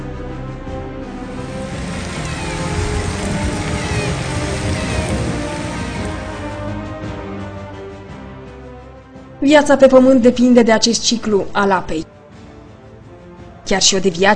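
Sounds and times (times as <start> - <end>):
steady rain: 1.2 - 7.0
low rumble: 1.2 - 7.1
speech: 9.4 - 12.1, 13.7 - 14.3.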